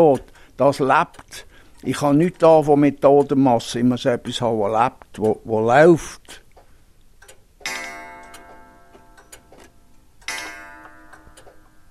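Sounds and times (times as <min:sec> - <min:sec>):
speech: 0:00.0 - 0:06.4
many hanging and standing clocks in a collection ticking: 0:00.2 - 0:03.7, 0:07.2 - 0:11.9
loud ringing metallic strikes: 0:07.6 - 0:09.3, 0:10.3 - 0:11.9.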